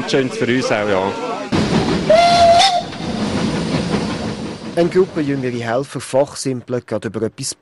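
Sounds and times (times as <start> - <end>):
speech: 0.1 - 3.0, 4.8 - 7.5
hiss of escaping steam from a steam locomotive: 1.5 - 5.9
Furka steam railway locomotive whistle: 2.1 - 3.2.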